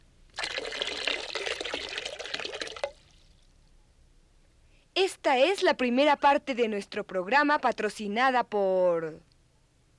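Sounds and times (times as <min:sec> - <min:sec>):
water pouring and dripping: 0:00.3 - 0:03.5
speech: 0:05.0 - 0:09.3.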